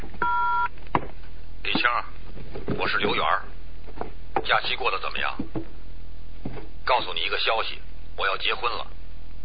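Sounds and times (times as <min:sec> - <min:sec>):
telephone answering machine message beep: 0:00.2 - 0:00.7
speech: 0:02.8 - 0:03.5, 0:04.4 - 0:05.6, 0:06.9 - 0:08.9.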